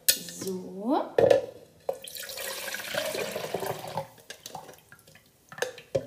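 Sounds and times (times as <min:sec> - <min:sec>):
speech: 0:00.4 - 0:01.4
liquid poured from one container into a larger one: 0:01.9 - 0:05.9.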